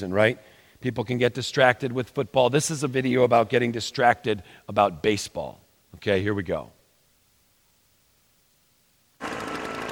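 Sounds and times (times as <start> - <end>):
speech: 0.0 - 6.8
leaf blower engine running: 9.2 - 9.9.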